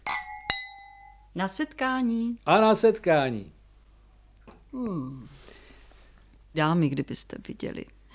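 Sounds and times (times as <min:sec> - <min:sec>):
glasses clinking in a toast: 0:00.0 - 0:01.3
speech: 0:01.3 - 0:03.6, 0:04.7 - 0:05.4, 0:06.6 - 0:08.0.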